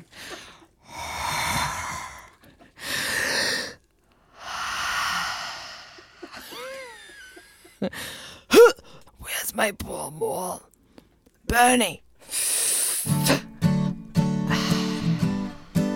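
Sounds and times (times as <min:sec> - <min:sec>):
long heavy breaths: 0:00.0 - 0:06.8, 0:07.9 - 0:09.1, 0:12.2 - 0:15.9
speech: 0:07.8 - 0:08.2, 0:09.6 - 0:10.7, 0:11.5 - 0:12.0.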